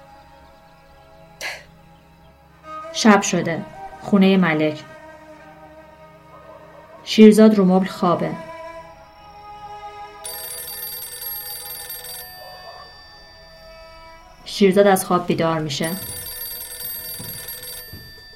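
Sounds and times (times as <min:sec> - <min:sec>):
speech: 0:03.0 - 0:04.9, 0:07.1 - 0:08.5, 0:14.6 - 0:16.1
old-style telephone bell ringing: 0:10.2 - 0:18.3.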